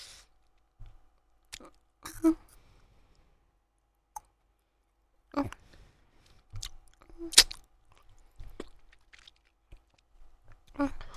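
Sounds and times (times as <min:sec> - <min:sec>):
wet mouth clicks and chewing of someone eating: 0:06.5 - 0:10.8.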